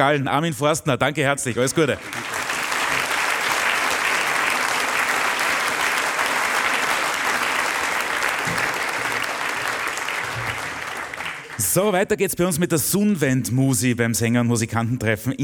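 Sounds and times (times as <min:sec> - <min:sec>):
speech: 0:00.0 - 0:02.3, 0:11.7 - 0:15.4
sustained applause from a large audience: 0:01.6 - 0:11.9.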